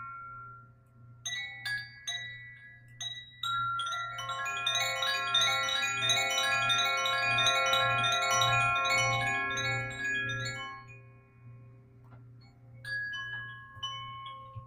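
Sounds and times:
sound bowl ringing: 0.0 - 11.8, 12.4 - 14.6
wind chimes: 0.0 - 14.6.

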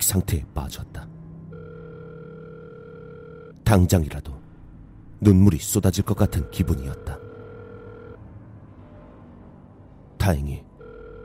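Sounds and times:
low constant rumble in a car: 0.0 - 11.2
speech: 0.1 - 1.2, 3.7 - 4.4, 5.2 - 7.2, 10.3 - 10.7
telephone ringback tone during a phone call from a car: 1.5 - 3.6, 6.2 - 8.2, 10.8 - 11.2.

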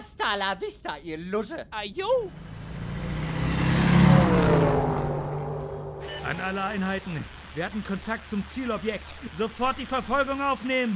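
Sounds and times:
speech: 0.3 - 2.5, 6.3 - 10.9
car engine revving and speeding away: 2.3 - 6.5.

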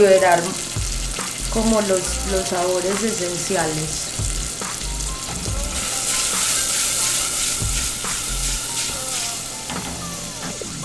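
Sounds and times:
speech: 0.0 - 0.8, 1.5 - 4.3
sofrito sizzling in a pan over lowered heat: 0.0 - 10.8.

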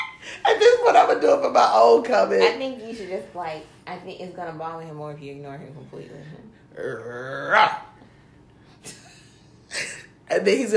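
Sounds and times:
speech: 0.4 - 7.9, 10.3 - 10.7
person growling like a dog: 6.7 - 7.8.

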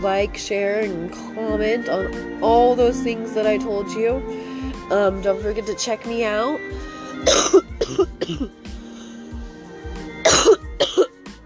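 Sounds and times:
speech: 0.0 - 8.6
faint throat-clearing rasp: 7.2 - 8.5, 10.2 - 11.1
harsh coughing: 7.2 - 8.6, 10.2 - 11.2.

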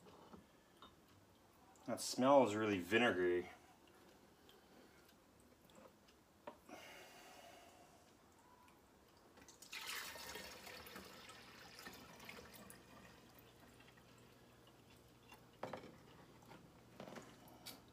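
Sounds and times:
speech: 1.8 - 3.6
vinegary liquid poured fast, splashing and spilling: 9.4 - 16.6.

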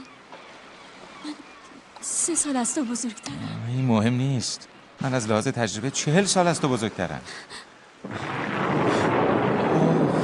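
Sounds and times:
steady heavy rain: 0.0 - 10.2
speech: 2.3 - 8.4
deep rolling thunder: 8.0 - 10.2.

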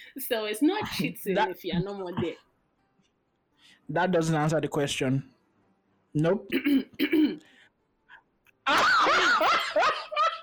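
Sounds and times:
speech: 0.1 - 2.5, 3.9 - 5.4, 6.1 - 7.5, 8.7 - 10.0
person clearing throat: 6.5 - 7.4
laughter: 8.7 - 10.4.

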